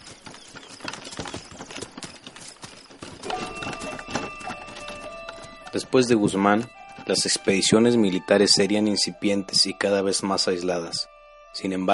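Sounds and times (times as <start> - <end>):
horse hooves clip-clopping: 0.0 - 8.8
speech: 5.7 - 11.9.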